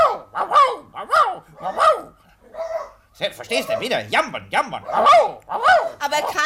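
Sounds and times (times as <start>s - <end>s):
person imitating a dog barking: 0.0s - 2.2s, 4.6s - 6.4s
speech: 3.2s - 6.4s.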